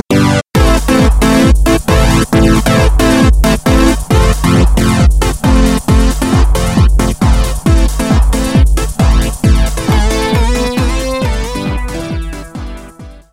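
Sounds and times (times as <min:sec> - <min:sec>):
acid synth lead: 0:00.2 - 0:13.2.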